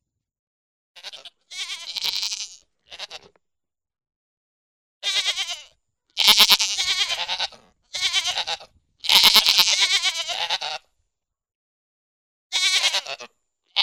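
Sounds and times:
pygmy goat giving loud trembling bleats: 0:01.0 - 0:03.4, 0:05.0 - 0:10.9, 0:12.5 - 0:13.8.

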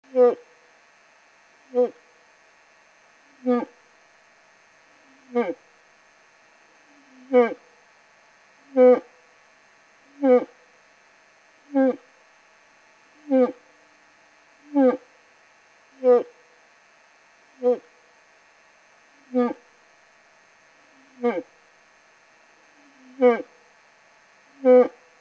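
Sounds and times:
old bull moose calling in rut: 0:03.4 - 0:03.8, 0:05.0 - 0:05.6, 0:06.9 - 0:07.6, 0:08.7 - 0:09.1, 0:10.1 - 0:10.6, 0:11.7 - 0:12.1, 0:13.2 - 0:13.6, 0:14.7 - 0:15.1, 0:16.0 - 0:16.4, 0:17.6 - 0:17.9, 0:19.2 - 0:19.6, 0:20.9 - 0:21.5, 0:22.8 - 0:23.5, 0:24.6 - 0:25.0.

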